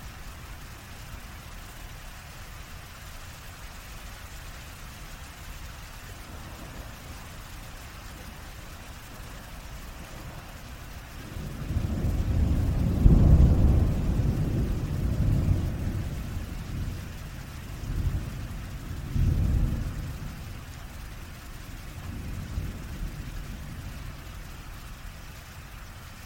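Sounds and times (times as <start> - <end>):
heavy rain hissing: 0.0 - 26.2
intense deep thunder rolling: 6.0 - 24.5.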